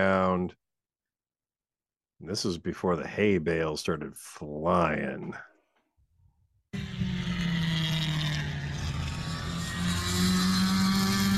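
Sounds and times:
speech: 0.0 - 0.7, 2.2 - 5.5
race car engine running: 6.8 - 11.3.

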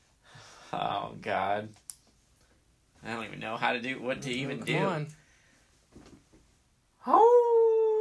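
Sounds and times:
speech: 0.7 - 1.8, 3.0 - 5.2
person imitating a dog howl: 7.0 - 8.0.

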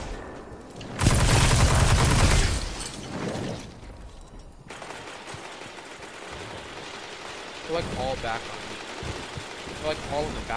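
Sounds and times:
submachine gun fire in a video game capture-the-flag match: 1.0 - 2.7, 4.7 - 10.5
speech: 7.8 - 8.7, 9.9 - 10.5.

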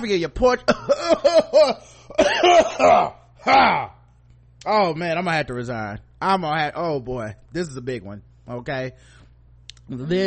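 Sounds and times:
speech: 0.0 - 3.9, 4.6 - 9.2, 9.9 - 10.2
exaggerated theatrical fake coughing: 0.6 - 4.0.

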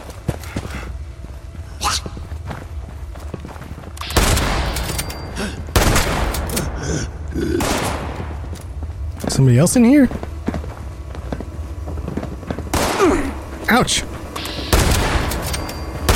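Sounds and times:
dense busy video game noise: 0.0 - 16.1
gunshots in a video game: 4.0 - 6.8, 7.5 - 8.4, 12.7 - 13.5, 14.4 - 16.1
speech: 9.4 - 10.2, 13.8 - 14.1.

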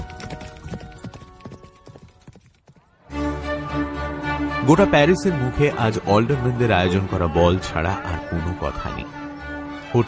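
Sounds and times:
horse galloping hard along a road: 0.0 - 2.9
speech: 4.7 - 9.2.

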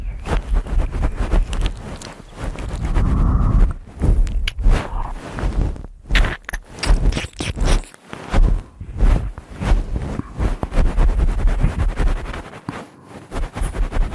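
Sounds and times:
low rumble: 0.0 - 6.1, 8.4 - 12.3
wet ear licking and ear cleaning: 0.3 - 3.2, 6.1 - 8.0.

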